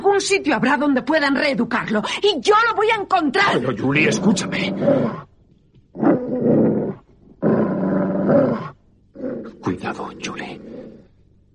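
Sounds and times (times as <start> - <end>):
speech: 0.2 - 5.3, 9.4 - 11.0
aggressive dog growling and snarling at a person: 3.6 - 5.3, 5.9 - 11.1.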